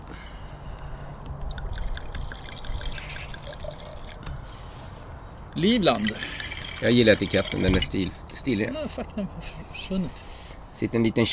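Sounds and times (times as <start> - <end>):
Stellenbosch wine from South Africa pouring into glasses: 1.5 - 4.2, 5.9 - 7.9
speech: 5.6 - 11.3.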